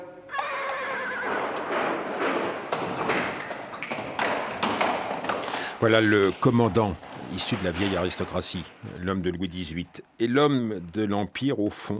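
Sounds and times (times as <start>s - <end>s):
horse whinnying: 0.2s - 2.1s
horse hooves clattering on a hard surface: 0.3s - 10.0s
speech: 5.8s - 11.9s.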